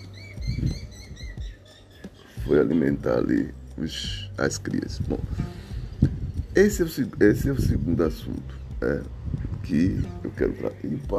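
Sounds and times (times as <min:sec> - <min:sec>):
soft low thumps: 0:00.0 - 0:01.6, 0:04.1 - 0:11.1
small birds chirping in high thin notes: 0:00.0 - 0:11.1
speech: 0:02.5 - 0:05.6, 0:06.6 - 0:11.1.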